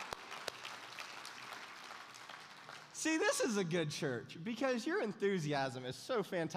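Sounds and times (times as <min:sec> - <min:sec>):
audience clapping: 0:00.0 - 0:03.6
speech: 0:03.0 - 0:06.5.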